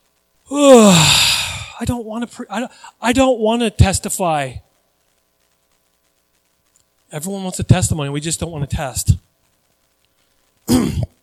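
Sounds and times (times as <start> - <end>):
exaggerated yawn with breathy exhale: 0.5 - 1.8
speech: 0.5 - 4.7, 7.1 - 9.3, 10.7 - 11.0.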